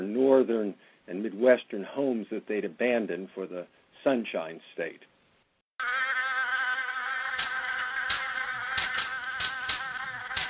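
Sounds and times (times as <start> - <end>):
speech: 0.3 - 5.1
swarm of mosquitoes buzzing: 5.8 - 10.4.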